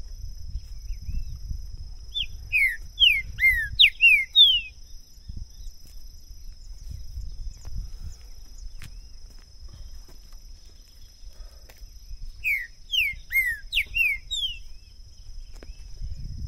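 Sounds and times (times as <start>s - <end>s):
green-winged saltator singing loud slurred whistled notes: 2.1s - 4.8s, 12.4s - 14.9s.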